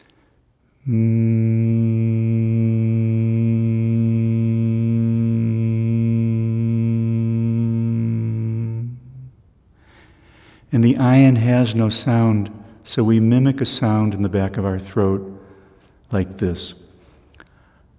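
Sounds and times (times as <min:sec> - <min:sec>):
speech: 0:00.8 - 0:01.4, 0:10.7 - 0:15.4, 0:16.1 - 0:16.8
voice humming mmm for the Hebrew letter Mem: 0:00.8 - 0:09.3.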